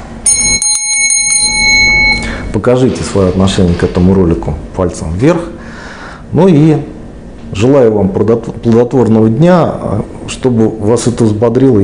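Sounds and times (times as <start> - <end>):
small bell ringing rapidly: 0.2 - 2.5
speech: 2.6 - 5.6, 6.3 - 11.8.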